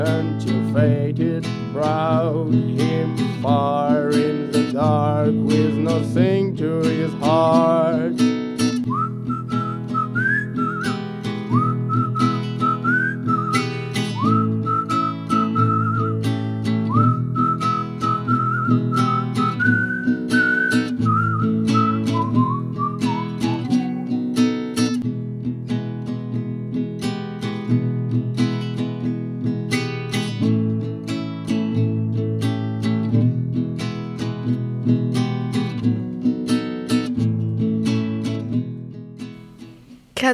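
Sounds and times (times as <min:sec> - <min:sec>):
speech: 0:00.0 - 0:08.3
acoustic folk guitar: 0:00.0 - 0:40.3
person whistling a folk melody: 0:08.8 - 0:24.5.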